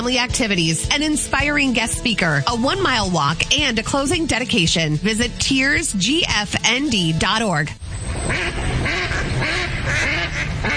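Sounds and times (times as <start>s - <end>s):
speech: 0.0s - 9.0s
several ducks quacking: 8.2s - 10.7s.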